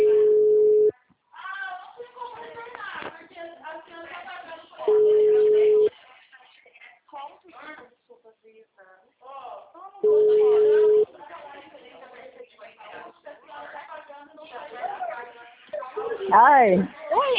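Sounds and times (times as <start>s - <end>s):
ringing tone of an outgoing telephone call: 0.0s - 0.9s, 4.9s - 5.9s, 10.0s - 11.0s
speech: 16.6s - 16.9s.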